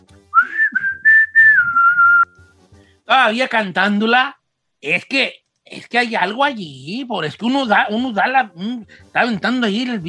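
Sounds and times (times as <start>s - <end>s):
person whistling a short tune: 0.3s - 2.5s
speech: 3.1s - 10.0s.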